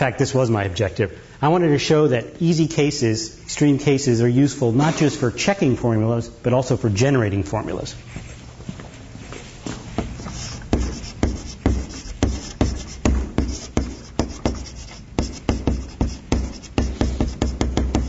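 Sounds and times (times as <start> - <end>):
speech: 0.0 - 8.2
writing on a board during a lecture: 10.0 - 18.0.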